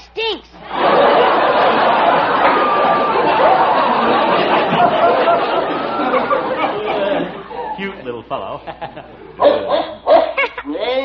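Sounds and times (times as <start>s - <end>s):
laughter: 0.6s - 10.9s
speech: 8.6s - 9.8s
dog barking: 9.4s - 10.6s.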